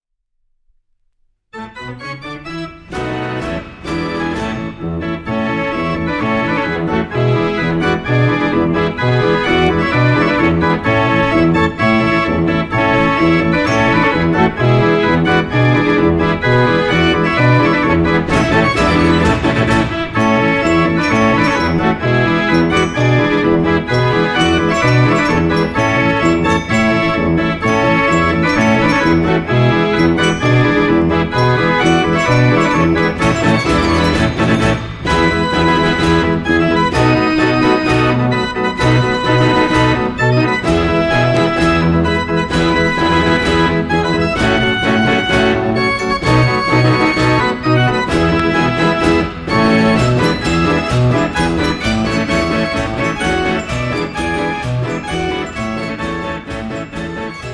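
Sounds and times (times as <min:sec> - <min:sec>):
34-key Ruth und Sohn concert organ playing a song march: 0:01.6 - 0:57.5.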